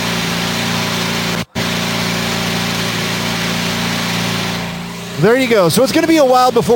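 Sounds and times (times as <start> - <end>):
race car engine idling in a garage: 0.0 - 6.7
speech: 5.2 - 6.7.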